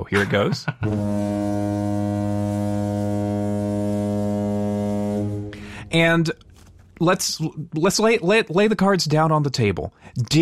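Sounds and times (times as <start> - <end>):
laughter: 0.0 - 1.1
speech: 0.0 - 2.2, 5.9 - 6.4, 7.0 - 10.4
loud deep horn blast sound effect: 0.8 - 6.6.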